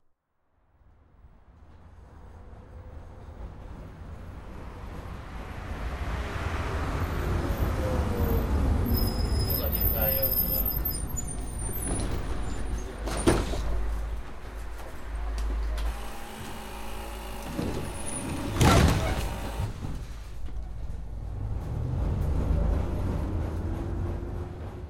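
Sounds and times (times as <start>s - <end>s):
tram at Nyugati Railway Station: 0.7s - 24.8s.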